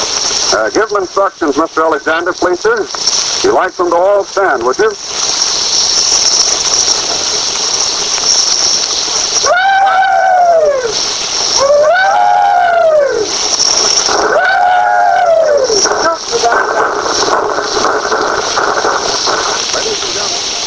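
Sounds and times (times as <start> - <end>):
steady hiss and crackle of an old recording: 0.0 - 20.6
speech: 0.5 - 5.2
group of Confederate veterans giving rebel yell: 9.4 - 13.4, 14.1 - 15.9.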